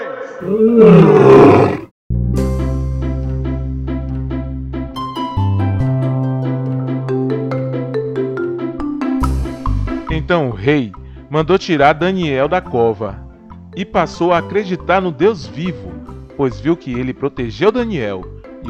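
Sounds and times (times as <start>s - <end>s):
speech: 0.4s - 1.8s, 10.6s - 13.2s, 13.8s - 18.6s
loud rumbling lion roar: 0.4s - 1.9s
melodic music bed with plucked notes and sustained tones: 2.1s - 18.6s.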